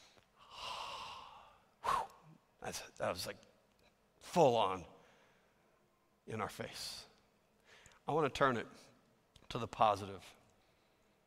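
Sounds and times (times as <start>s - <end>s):
deep breath in and out: 0.0s - 2.3s, 5.0s - 5.8s, 7.6s - 8.0s
speech: 2.6s - 3.5s, 4.3s - 5.0s, 6.3s - 7.1s, 8.1s - 8.9s, 9.5s - 10.4s.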